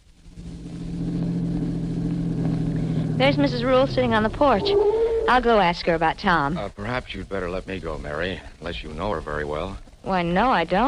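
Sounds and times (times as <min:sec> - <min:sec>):
car engine rumbling as the car drives up to a boarding house: 0:00.0 - 0:10.1
speech: 0:03.2 - 0:10.8.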